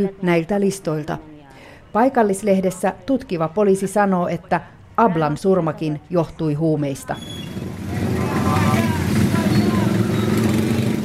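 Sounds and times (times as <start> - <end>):
speech: 0.0 - 1.3, 1.9 - 7.5
procession of mopeds speeding past: 7.2 - 11.0.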